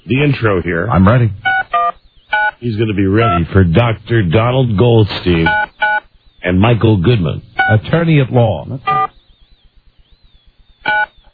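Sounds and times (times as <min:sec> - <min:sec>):
rapid even ticking pulses on a call line: 0:00.0 - 0:11.3
speech: 0:00.1 - 0:01.5, 0:02.6 - 0:05.7, 0:06.4 - 0:09.0
touch-tone telephone keypad beep: 0:01.4 - 0:02.6, 0:05.4 - 0:06.0, 0:07.6 - 0:07.8, 0:08.8 - 0:09.1, 0:10.8 - 0:11.2.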